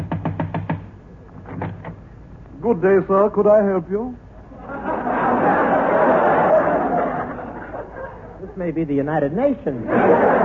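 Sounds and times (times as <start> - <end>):
firm knocking on a neighbour's door: 0.0 - 0.9
speech: 2.6 - 4.2, 8.6 - 10.4
laughter: 4.5 - 8.6, 9.8 - 10.4.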